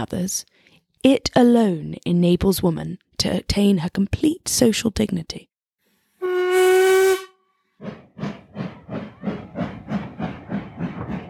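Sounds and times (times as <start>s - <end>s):
speech: 0.0s - 5.5s, 7.8s - 8.3s
steam locomotive whistle blast: 6.2s - 7.4s.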